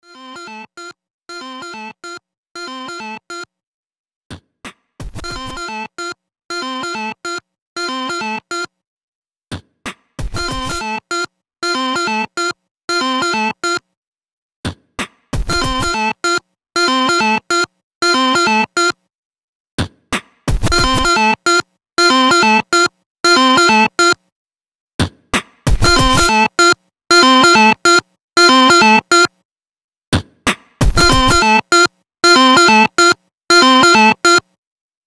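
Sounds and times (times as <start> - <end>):
Sony Ericsson W995 phone blips: 5.2 - 8.7, 10.4 - 13.8, 15.5 - 19.0, 20.6 - 24.2, 25.8 - 29.3, 30.9 - 34.5.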